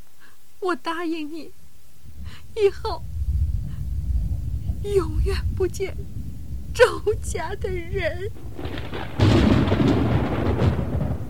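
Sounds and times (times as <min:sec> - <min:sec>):
speech: 0:00.6 - 0:01.6, 0:02.2 - 0:03.1, 0:04.8 - 0:06.2, 0:06.8 - 0:10.2
thunder rolling across the sky: 0:02.1 - 0:11.2.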